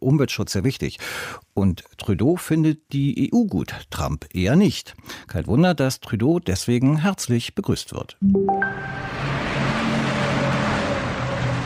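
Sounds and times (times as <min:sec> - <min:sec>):
speech: 0:00.0 - 0:09.4
traffic roar on a busy motorway: 0:09.0 - 0:11.6.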